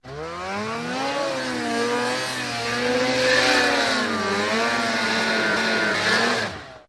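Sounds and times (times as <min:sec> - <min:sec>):
snowmobile maneuvering: 0:00.0 - 0:06.8.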